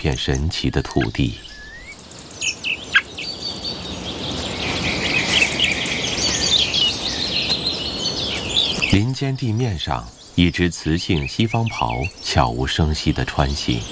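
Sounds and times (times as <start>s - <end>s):
speech: 0.0s - 1.5s, 9.0s - 13.9s
faint steady hiss: 0.0s - 13.9s
nestling birds calling near the nest: 0.0s - 13.9s.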